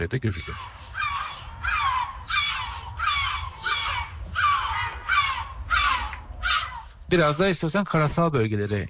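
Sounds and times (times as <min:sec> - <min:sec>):
speech: 0:00.0 - 0:00.8, 0:07.1 - 0:08.8
low rumbling background: 0:00.0 - 0:08.8
yellow-legged gull harsh squawks: 0:00.3 - 0:07.0.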